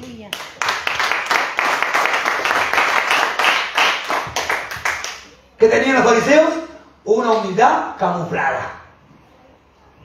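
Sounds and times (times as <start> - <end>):
crowd clapping during a church service: 0.0 - 5.4
speech: 5.6 - 8.8.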